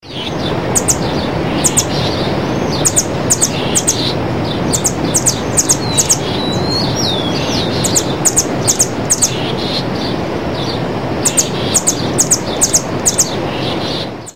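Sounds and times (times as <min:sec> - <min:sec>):
Amazilia fimbriata calling: 0:00.0 - 0:14.3.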